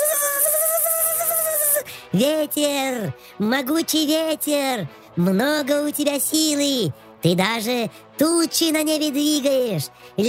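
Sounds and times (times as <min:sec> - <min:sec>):
mosquito whine as it flies out a window: 0:00.0 - 0:01.8
speech: 0:02.1 - 0:10.2.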